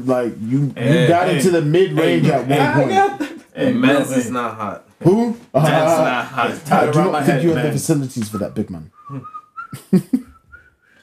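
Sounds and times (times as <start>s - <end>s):
speech: 0.0s - 10.3s
person whistling a short melody: 8.3s - 11.0s.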